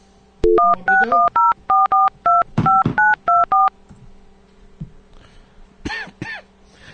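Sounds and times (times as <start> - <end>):
touch-tone phone dialing beeps: 0.4 - 3.7
speech: 0.7 - 1.3
person clearing throat: 5.8 - 6.5.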